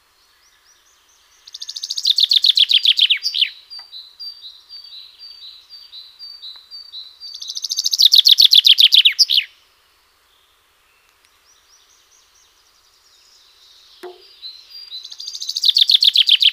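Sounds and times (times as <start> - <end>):
common chaffinch Fringilla coelebs singing descending trilled phrases with terminal flourish: 1.4 - 9.5, 13.8 - 16.5.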